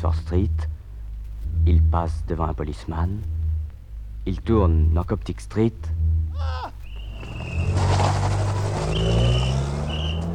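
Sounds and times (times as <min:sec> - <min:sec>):
speech: 0:00.0 - 0:00.7, 0:01.6 - 0:03.4, 0:04.2 - 0:06.8
car engine revving as the vehicle accelerates: 0:00.0 - 0:10.3
tire squeal: 0:06.0 - 0:10.3.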